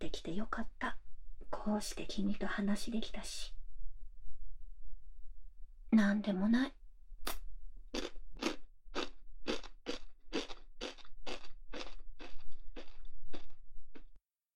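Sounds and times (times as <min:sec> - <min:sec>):
speech: 0:00.2 - 0:01.0, 0:01.6 - 0:03.6, 0:05.9 - 0:07.4
person chewing and crunching a salty snack: 0:07.9 - 0:14.2.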